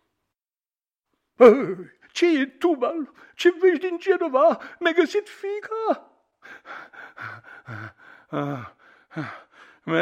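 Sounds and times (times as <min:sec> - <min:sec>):
speech: 0:01.4 - 0:10.0
person panting out of breath after running: 0:06.4 - 0:09.9.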